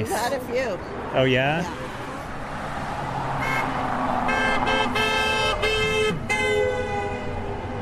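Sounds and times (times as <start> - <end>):
speech: 0.0 - 1.9
steady rumble of passing traffic: 0.0 - 7.7
Tesla car horn honking at a protest: 3.4 - 7.7.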